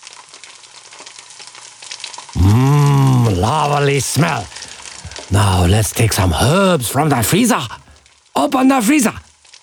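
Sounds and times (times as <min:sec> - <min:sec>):
onion and garlic sizzling in a hot pan: 0:00.0 - 0:02.4
speech: 0:03.4 - 0:04.6, 0:05.3 - 0:07.8, 0:08.4 - 0:09.2.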